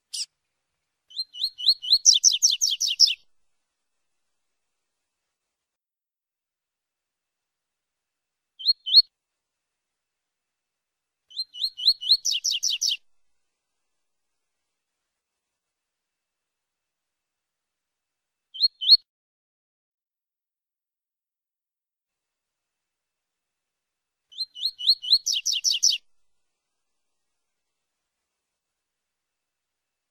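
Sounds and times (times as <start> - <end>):
Coleiro Baiano singing: 1.1 - 3.2, 11.3 - 13.0, 24.3 - 26.0.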